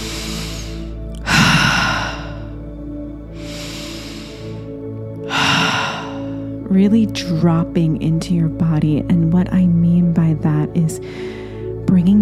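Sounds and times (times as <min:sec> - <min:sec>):
deep breathing, in through the nose, out through the mouth: 0:00.0 - 0:06.6, 0:11.0 - 0:11.8
low steady drone: 0:00.0 - 0:12.2
speech: 0:06.7 - 0:11.2, 0:11.9 - 0:12.2.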